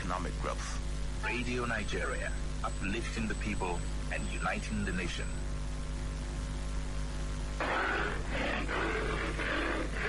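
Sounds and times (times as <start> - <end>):
speech: 0.1 - 5.5
steady low hum: 0.5 - 10.0
lion roaring: 7.6 - 10.0.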